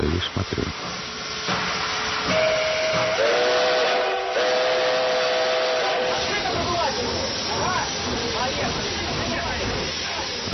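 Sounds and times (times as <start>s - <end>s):
hiss of escaping steam: 0.0s - 10.5s
steam locomotive whistle: 2.2s - 7.5s.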